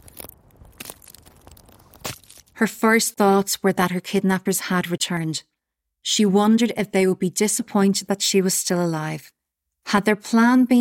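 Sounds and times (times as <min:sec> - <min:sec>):
footsteps crunching over twigs and dry foliage: 0:00.0 - 0:02.6
speech: 0:02.6 - 0:10.8.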